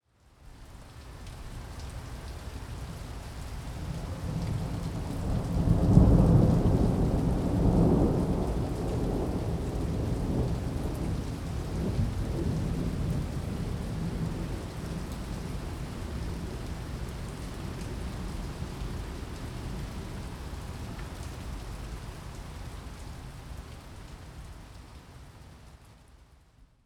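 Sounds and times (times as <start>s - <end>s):
Foley thunder: 4.1s - 16.3s.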